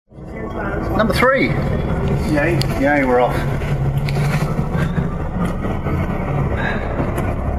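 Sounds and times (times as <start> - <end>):
engine rumble on the upper deck of a moving double-decker bus in Birmingham: 0.1 - 7.5
speech: 1.0 - 3.7.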